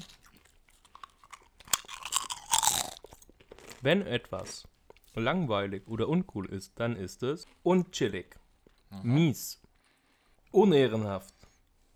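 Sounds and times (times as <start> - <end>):
chewing crunchy stacked potato chips: 0.0 - 5.3
speech: 3.8 - 9.6, 10.5 - 11.4.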